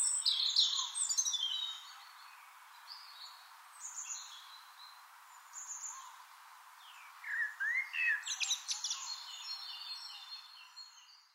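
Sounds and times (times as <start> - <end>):
steady background hiss: 0.0 - 11.3
Eurasian blackbird soft whistled phrases: 7.3 - 8.6.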